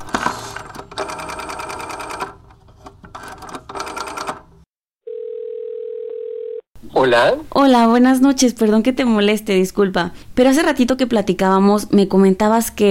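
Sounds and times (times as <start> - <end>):
telephone dialing a hotel room with rapid mechanical clicking: 0.7 - 4.5
steady even phone tone: 5.0 - 6.7
speech: 7.0 - 12.8.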